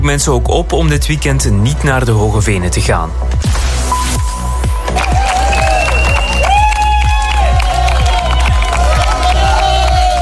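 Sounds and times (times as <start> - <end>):
speech: 0.1 - 4.3
crowd clapping steadily: 4.8 - 10.1
dense crowd cheering for walkers finishing a 100-kilometre walking event: 4.8 - 10.1
crowd shouting: 5.0 - 10.1
crowd whistles: 5.5 - 6.7.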